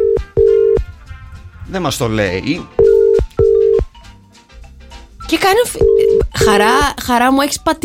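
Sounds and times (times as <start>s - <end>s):
telephone ringback tone from an unanswered outgoing call: 0.0s - 0.8s, 2.8s - 3.9s, 5.8s - 6.4s
speech: 1.7s - 2.9s, 5.3s - 7.8s.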